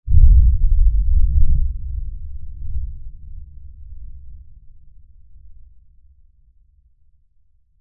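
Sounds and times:
low-frequency blast impact rumble: 0.1s - 4.0s.

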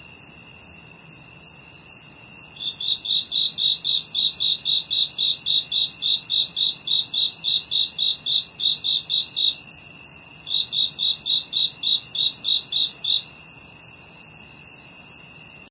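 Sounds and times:
continuous shrill insect hum: 0.0s - 15.6s
cricket chirping: 0.0s - 15.6s.

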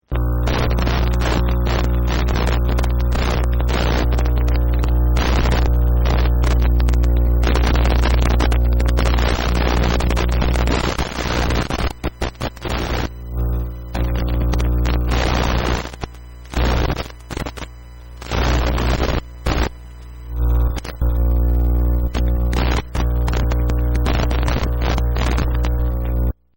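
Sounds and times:
crackling radio static electronic signal: 0.0s - 26.5s.

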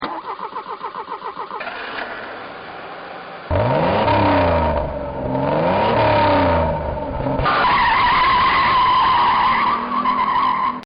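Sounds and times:
Porsche car starting: 0.0s - 10.7s
Porsche car engine revving: 1.6s - 10.4s.

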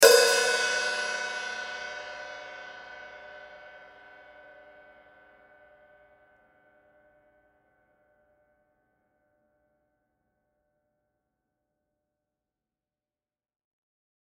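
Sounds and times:
drum hi-hat: 0.0s - 1.0s.

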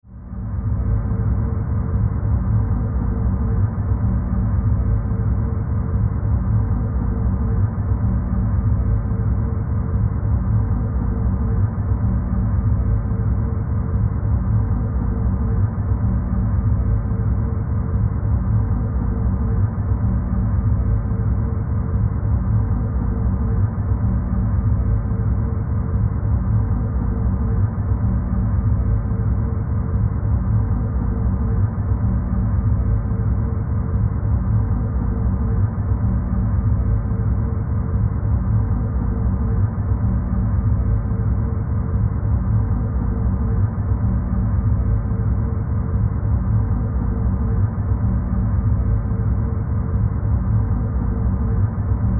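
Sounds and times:
dark supernatural ghostly horror drone: 0.1s - 52.1s.

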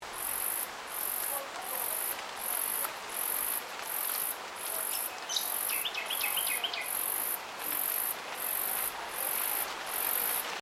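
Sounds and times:
insect calling with shrill high pulses at Yandina: 0.1s - 10.6s.

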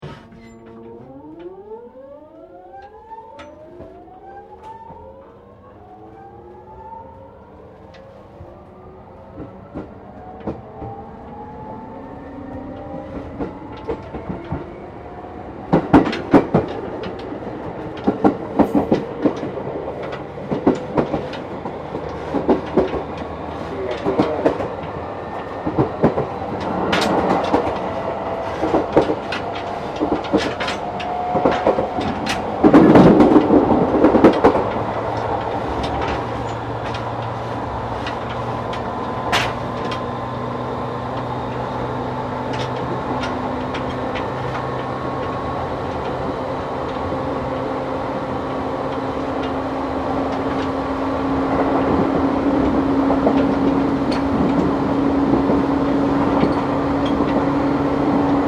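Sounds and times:
regional local train starting up at a connecting platform in Aomori Japan: 0.0s - 58.4s.

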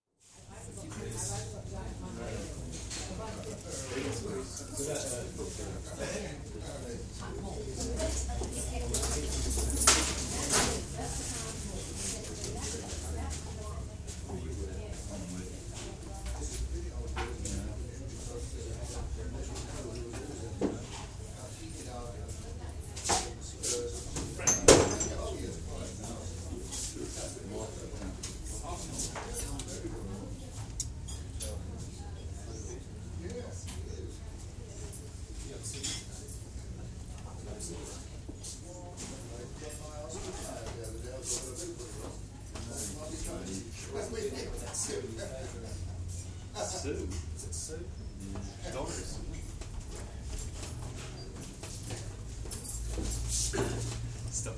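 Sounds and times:
quiet crowd in public house: 0.2s - 54.5s.

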